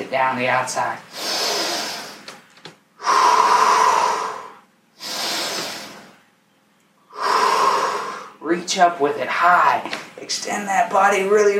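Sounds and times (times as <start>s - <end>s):
speech: 0.1s - 1.4s, 8.6s - 11.5s
deep breaths during a gentle fibromyalgia pain-relief exercise routine: 1.1s - 2.4s, 3.0s - 6.3s, 7.1s - 8.4s.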